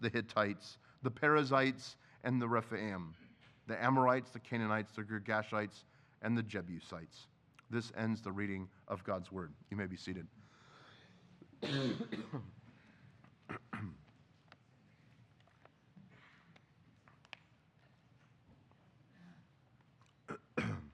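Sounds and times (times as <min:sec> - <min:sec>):
speech: 0:00.0 - 0:10.4, 0:11.6 - 0:12.6
person clearing throat: 0:11.6 - 0:12.5, 0:13.5 - 0:14.0, 0:20.3 - 0:20.9
person coughing: 0:11.6 - 0:12.6, 0:13.5 - 0:14.0, 0:20.3 - 0:20.9.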